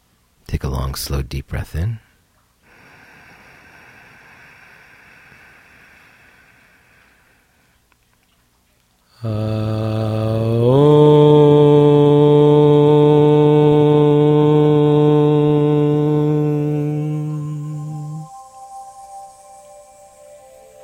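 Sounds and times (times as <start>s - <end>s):
speech: 0.6s - 2.0s
group chanting a long resonant tone to close a meditation: 9.2s - 20.8s.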